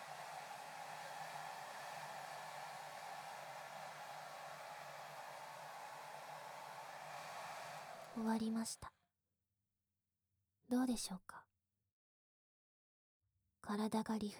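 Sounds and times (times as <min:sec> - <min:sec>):
hair dryer drying hair: 0:00.0 - 0:08.7
speech: 0:08.2 - 0:09.0, 0:10.9 - 0:11.5, 0:13.6 - 0:14.3.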